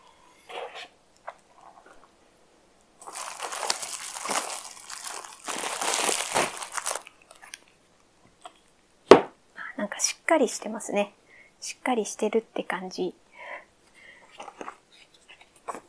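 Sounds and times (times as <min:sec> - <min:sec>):
microphone packaging crinkling during unboxing: 0:03.0 - 0:07.7
speech: 0:10.3 - 0:13.3.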